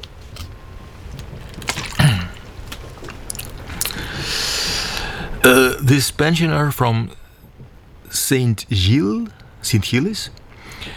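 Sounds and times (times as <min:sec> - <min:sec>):
soft mouth clicks while sipping water: 0:00.0 - 0:05.9
light hiss: 0:00.0 - 0:10.9
brief slurp and swallow of water: 0:00.2 - 0:05.7
speech: 0:05.4 - 0:07.2, 0:08.1 - 0:10.4.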